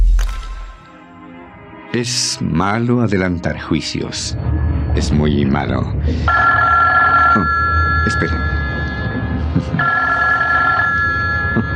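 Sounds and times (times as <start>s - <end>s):
speech: 2.0s - 6.8s, 7.4s - 8.5s
telephone ringing with an incoming call: 6.3s - 11.7s.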